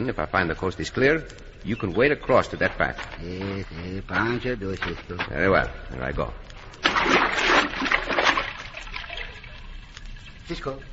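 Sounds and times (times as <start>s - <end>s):
speech: 0.0s - 7.9s, 10.5s - 10.9s
person plunging into water to swim under it: 6.8s - 9.2s
water churning and sloshing: 6.8s - 10.6s.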